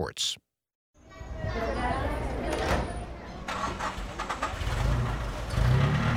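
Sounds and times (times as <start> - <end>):
indistinct voices: 0.0 - 0.4
speech: 0.0 - 0.4
street bustle: 1.0 - 6.1
school bus engines rumbling and revving as buses pull away: 3.4 - 6.1.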